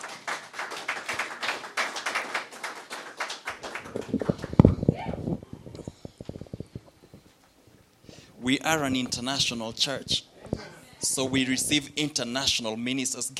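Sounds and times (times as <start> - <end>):
crowd clapping: 0.0 - 4.9
speech: 8.5 - 10.3, 11.2 - 13.3.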